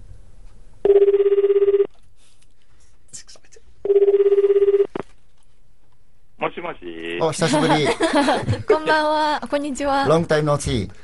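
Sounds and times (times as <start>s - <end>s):
telephone ringing on an international call to Japan: 0.8s - 1.9s, 3.9s - 5.0s
speech: 6.6s - 11.0s
laughter: 7.3s - 9.1s.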